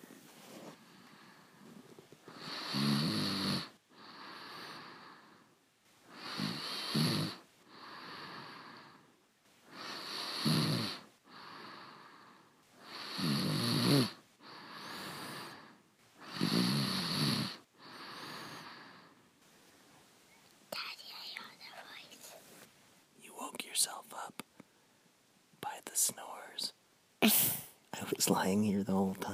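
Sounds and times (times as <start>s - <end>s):
quiet breathing: 0.0s - 26.8s
person snoring loudly while asleep: 2.3s - 4.9s, 6.1s - 8.6s, 9.7s - 11.6s, 12.9s - 15.6s, 16.2s - 18.8s
speech: 28.3s - 29.3s.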